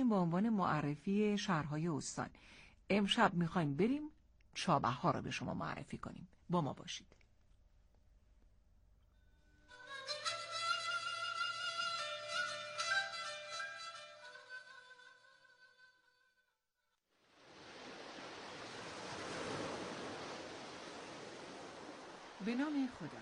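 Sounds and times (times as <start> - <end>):
speech: 0.1 - 7.2, 22.4 - 23.1
music: 9.1 - 16.6
open-sea waves breaking on the shore at Chabahar Iran: 17.2 - 23.1.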